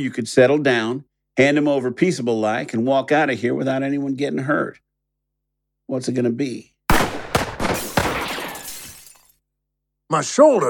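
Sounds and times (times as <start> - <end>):
speech: 0.0 - 4.8, 5.9 - 6.7, 10.1 - 10.6
gunshots in a Western showdown knocking a gun from a hand: 6.9 - 8.8
glass bottles shattering: 7.6 - 9.4.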